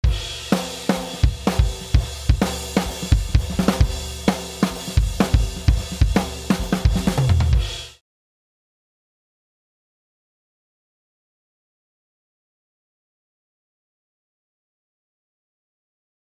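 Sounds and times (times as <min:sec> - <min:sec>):
drums: 0:00.0 - 0:08.0.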